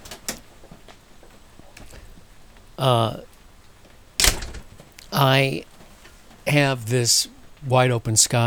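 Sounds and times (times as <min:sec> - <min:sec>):
speech: 0:02.8 - 0:03.3, 0:05.2 - 0:05.7, 0:06.5 - 0:08.4
door opening with a scraping squeak: 0:04.2 - 0:04.9.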